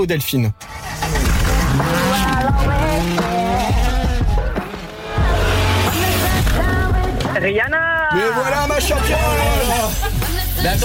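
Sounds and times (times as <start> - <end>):
speech: 0.0 - 3.3, 7.4 - 10.8
song playing: 0.5 - 10.8
car exhaust revving and roaring: 0.6 - 7.4.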